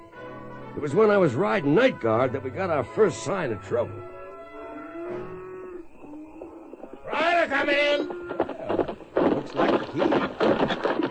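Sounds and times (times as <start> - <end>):
speech: 0.8 - 4.1
cattle lowing from a restless herd at night during a trail drive: 4.2 - 11.0.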